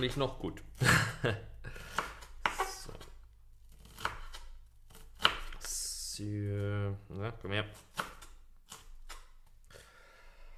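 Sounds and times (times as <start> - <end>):
speech: 0.0 - 1.5, 6.2 - 7.9
sharp knife chopping onions on a board: 3.8 - 5.6, 7.8 - 9.3.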